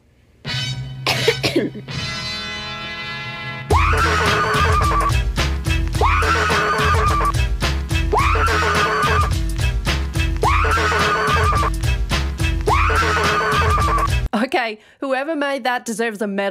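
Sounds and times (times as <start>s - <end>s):
speech: 1.6s - 2.0s, 14.5s - 16.4s
woman screaming: 3.7s - 5.1s, 6.0s - 7.3s, 8.1s - 9.3s, 10.4s - 11.7s, 12.6s - 14.1s
loud steady rhythmic beat with a repeating musical pattern: 3.7s - 14.3s.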